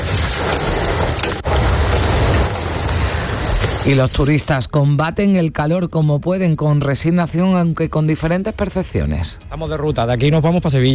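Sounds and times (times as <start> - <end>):
hail pelting down hard in Macael, Almería province, Spain: 0.0 - 4.5
speech: 3.9 - 10.9.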